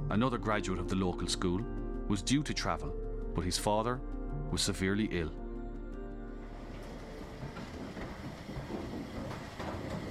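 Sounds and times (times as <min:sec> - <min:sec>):
speech: 0:00.1 - 0:05.4
train rumbling along tracks: 0:06.5 - 0:10.0
train wheels clacking over rail joints: 0:06.6 - 0:10.0.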